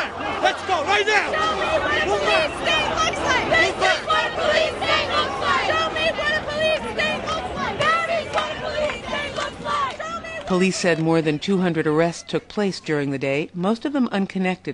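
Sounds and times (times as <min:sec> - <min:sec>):
large crowd of demonstrators shouting angrily at police: 0:00.0 - 0:10.9
speech: 0:10.5 - 0:14.7.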